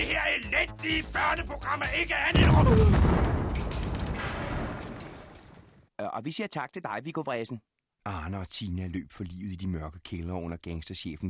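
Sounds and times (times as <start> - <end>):
speech: 0.0 - 3.4, 6.0 - 11.2
explosion sound effect with deep rumbling boom: 2.3 - 5.9
crackling debris-like noise: 2.4 - 5.9.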